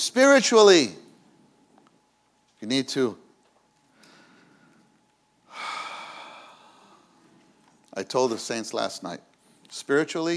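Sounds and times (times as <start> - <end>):
speech: 0.0 - 1.0, 2.6 - 3.2, 8.0 - 10.3
deep breath in and out: 3.9 - 7.4.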